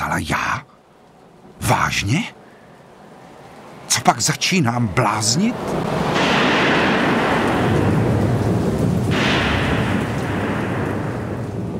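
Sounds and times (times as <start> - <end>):
speech: 0.2 - 0.7, 1.7 - 2.4, 3.9 - 6.6
heavy storm roaring with rushing noise: 3.0 - 11.7
deep thunder-like rumbling: 4.8 - 11.7.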